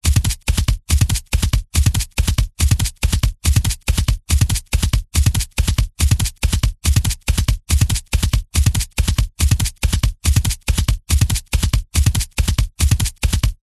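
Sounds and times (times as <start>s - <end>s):
designed sound of horse hooves running fast on ground: 0.0s - 13.6s.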